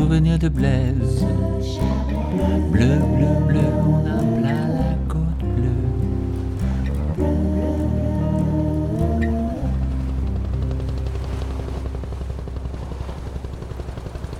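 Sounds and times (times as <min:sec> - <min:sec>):
speech: 0:00.1 - 0:05.0
wavering tonal sounds: 0:01.0 - 0:14.3
helicopter passing overhead with rotor throb and engine drone: 0:01.2 - 0:04.9, 0:06.6 - 0:14.3.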